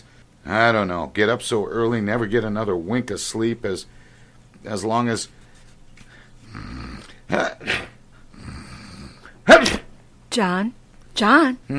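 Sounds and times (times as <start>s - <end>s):
speech: 0.4s - 4.0s, 4.6s - 5.4s, 7.3s - 7.8s, 10.3s - 11.7s
person sneezing loudly: 7.1s - 8.0s, 9.2s - 9.9s.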